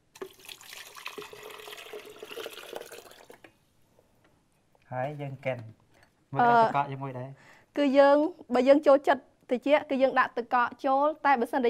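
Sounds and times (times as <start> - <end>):
coconut water with pieces of coconut flesh poured into a bowl: 0.0 - 3.5
coconut water dripping: 0.0 - 3.6
speech: 4.9 - 11.6.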